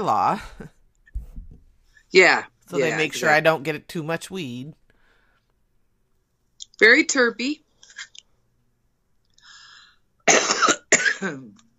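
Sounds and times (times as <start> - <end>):
speech: 0.0 - 0.8, 2.1 - 4.8, 6.8 - 8.1, 11.2 - 11.6
person coughing: 10.3 - 11.6.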